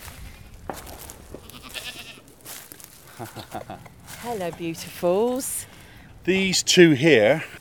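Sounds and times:
busy outdoor noise: 0:00.0 - 0:07.5
young goats bleating: 0:01.4 - 0:02.4
laughter: 0:03.1 - 0:03.9
speech: 0:03.2 - 0:05.7, 0:06.3 - 0:07.5.

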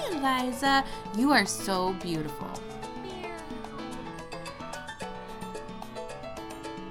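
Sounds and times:
speech: 0:00.2 - 0:02.7
cat meowing: 0:02.9 - 0:03.9.

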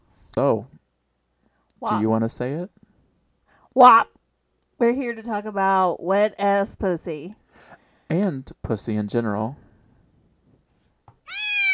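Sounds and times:
speech: 0:00.4 - 0:00.7, 0:01.8 - 0:02.8, 0:03.8 - 0:04.2, 0:04.8 - 0:09.6
kitten meowing: 0:11.2 - 0:11.7.

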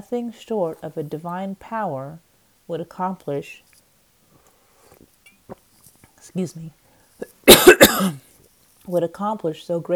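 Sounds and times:
speech: 0:00.0 - 0:03.7, 0:06.3 - 0:06.8, 0:08.9 - 0:09.9
person coughing while reading aloud: 0:07.4 - 0:08.2.

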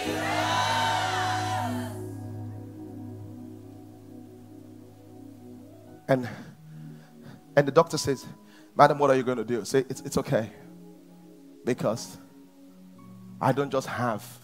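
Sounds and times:
large audience screaming a name together: 0:00.0 - 0:02.0
speech: 0:06.1 - 0:06.5, 0:07.6 - 0:10.7, 0:11.6 - 0:12.2, 0:13.4 - 0:14.4.

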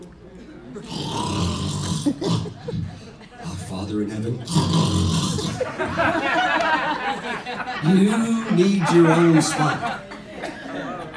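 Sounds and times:
voice imitating loud snoring: 0:00.8 - 0:02.6, 0:04.4 - 0:05.7
laughter: 0:02.0 - 0:03.7, 0:05.4 - 0:11.1
speech: 0:03.8 - 0:06.4, 0:07.4 - 0:10.0.

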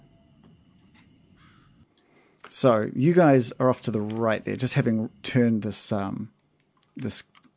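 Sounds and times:
hoarse owl-like bird calls in woods: 0:01.4 - 0:01.8
speech: 0:02.5 - 0:06.4, 0:07.0 - 0:07.4.

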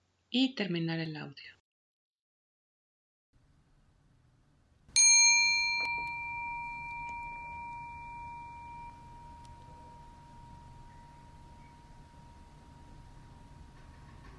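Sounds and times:
speech: 0:00.3 - 0:01.6
gong being struck: 0:05.4 - 0:14.1.

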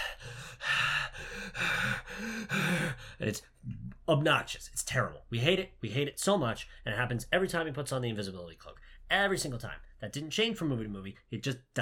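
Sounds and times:
voice imitating loud heavy breathing: 0:00.0 - 0:03.8
speech: 0:03.2 - 0:11.8.

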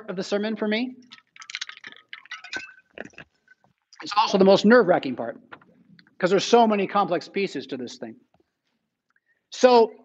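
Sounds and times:
speech: 0:00.0 - 0:01.2, 0:04.0 - 0:05.6, 0:06.2 - 0:08.2, 0:09.5 - 0:10.0
swallowing: 0:01.0 - 0:04.0
person sipping water: 0:01.0 - 0:04.1.

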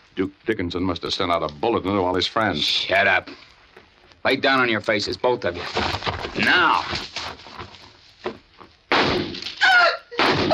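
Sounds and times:
speech: 0:00.2 - 0:03.5, 0:04.2 - 0:07.1
gunshots fired into car tires: 0:08.9 - 0:09.6.

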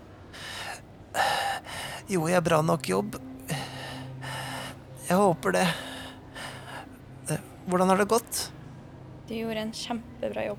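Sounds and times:
person performing labored gasping breaths of an injured man: 0:00.3 - 0:02.2, 0:03.4 - 0:07.5
speech: 0:02.1 - 0:03.2, 0:05.1 - 0:05.9, 0:07.3 - 0:08.5, 0:09.3 - 0:10.5.

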